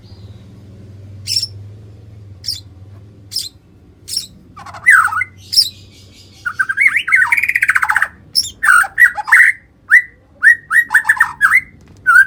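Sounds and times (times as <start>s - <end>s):
White-rumped shama singing: 1.2s - 1.6s, 2.4s - 2.7s, 3.3s - 12.2s.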